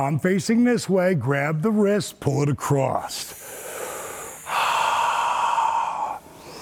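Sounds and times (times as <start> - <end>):
speech: 0.0 - 3.5
deep breathing during an exercise workout: 3.2 - 6.6.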